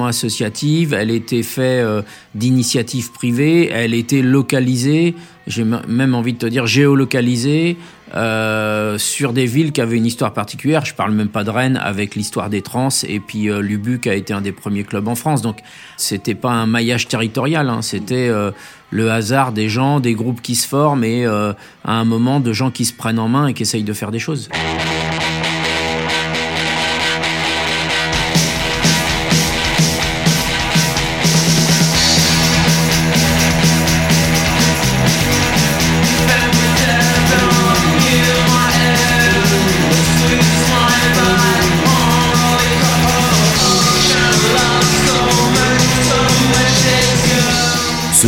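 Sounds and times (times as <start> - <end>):
speech: 0.0 - 25.0
abrasive rock music with distorted guitars: 24.5 - 48.2.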